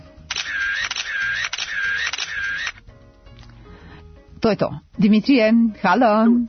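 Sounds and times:
camera shutter clicking at an exhibition outside the Military Museum: 0:00.3 - 0:02.8
speech: 0:04.4 - 0:06.4.

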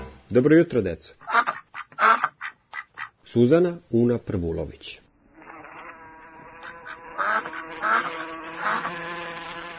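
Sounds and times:
speech: 0:00.3 - 0:01.3, 0:03.3 - 0:05.0
duck quacking: 0:01.2 - 0:03.2, 0:05.4 - 0:09.7
insect-like buzzing drone: 0:05.4 - 0:09.7.

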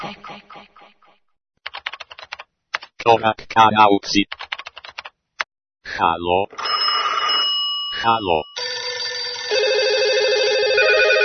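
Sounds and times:
speech: 0:00.1 - 0:00.8, 0:03.0 - 0:04.5, 0:05.9 - 0:06.6, 0:08.0 - 0:08.5
telephone ringing for an incoming call: 0:06.5 - 0:07.9, 0:08.6 - 0:11.2.

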